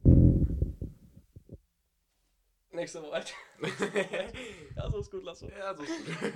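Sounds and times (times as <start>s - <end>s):
microphone dragged and bumped across a table: 0.0s - 1.6s
speech: 2.8s - 6.3s
laughter: 3.3s - 4.7s, 5.6s - 6.3s.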